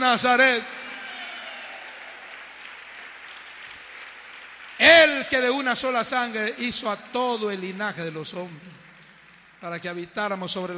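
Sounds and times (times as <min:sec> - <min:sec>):
speech: 0:00.0 - 0:00.8, 0:05.0 - 0:08.8, 0:09.6 - 0:10.7
church audience applauding: 0:00.0 - 0:06.3.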